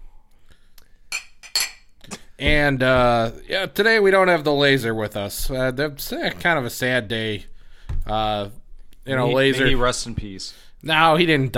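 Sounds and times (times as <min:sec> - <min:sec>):
glasses clinking in a toast: 0:01.1 - 0:01.9
speech: 0:02.4 - 0:07.5, 0:08.1 - 0:11.5.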